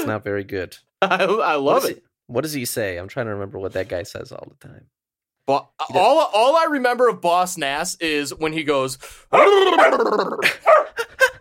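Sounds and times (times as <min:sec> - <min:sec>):
speech: 0:00.0 - 0:11.3
dog howling and barking: 0:09.3 - 0:10.9.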